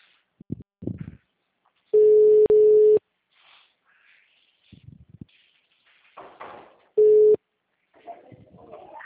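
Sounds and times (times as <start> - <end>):
telephone line tones after a number is dialed: 2.0 - 3.0, 7.0 - 7.4.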